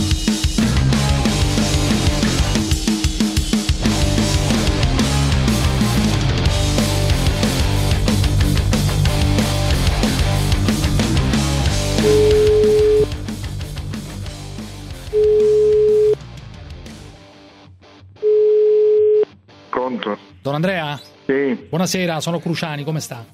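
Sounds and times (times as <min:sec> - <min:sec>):
busy music: 0:00.0 - 0:23.3
ringback tones of a call placed to a mobile phone: 0:12.0 - 0:13.1, 0:15.1 - 0:16.2, 0:18.2 - 0:19.2
speech: 0:20.6 - 0:23.3.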